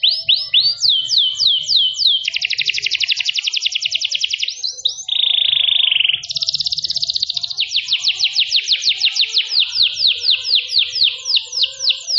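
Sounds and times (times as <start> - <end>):
canary singing a long cengkok song with fast buzzy trills: 0.0 - 12.1.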